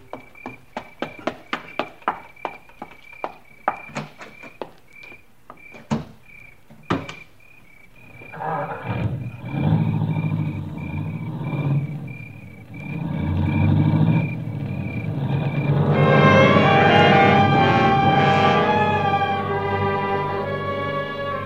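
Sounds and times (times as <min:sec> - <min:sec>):
car engine pulling away: 0:08.8 - 0:21.4
loud tonal sound: 0:15.7 - 0:21.4.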